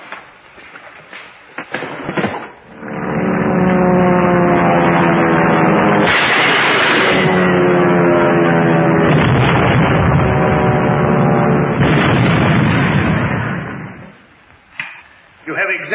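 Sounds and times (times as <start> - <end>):
sharp cracking bangs: 0.0 - 15.1
propeller airplanes droning roar: 2.5 - 14.5.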